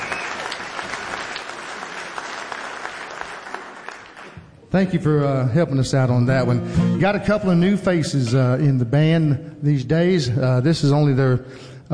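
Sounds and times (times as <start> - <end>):
audience applauding at a live band show: 0.0 - 4.5
speech: 4.7 - 11.9.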